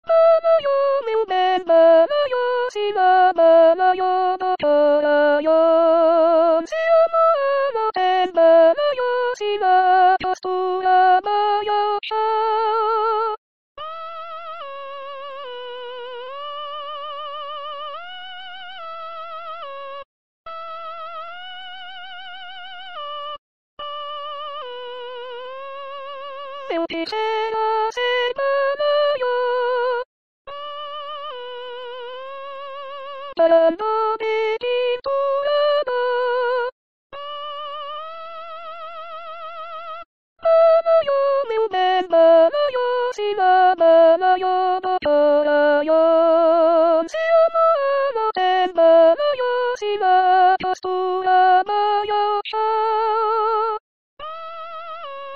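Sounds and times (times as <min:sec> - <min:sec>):
soprano singing Brazilian folk song: 0:00.1 - 0:13.4, 0:26.6 - 0:30.1, 0:33.3 - 0:36.7, 0:40.4 - 0:53.7.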